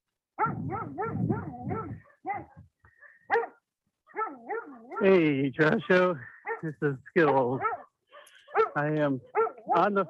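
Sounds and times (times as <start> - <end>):
dog yelp: 0.4 - 2.6, 3.3 - 5.1, 7.6 - 10.0
dogs barking: 0.4 - 5.2, 6.2 - 10.0
speech: 5.0 - 7.8, 8.8 - 10.0.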